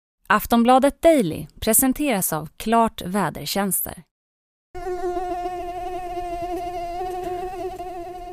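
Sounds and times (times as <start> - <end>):
speech: 0.3 - 4.1
mosquito buzzing: 4.8 - 8.3.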